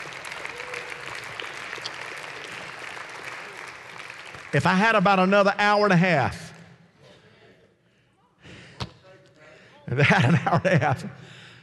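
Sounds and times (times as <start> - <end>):
large indoor crowd clapping: 0.0 - 5.6
speech: 4.5 - 6.4, 10.0 - 11.4
laughter: 9.9 - 11.3.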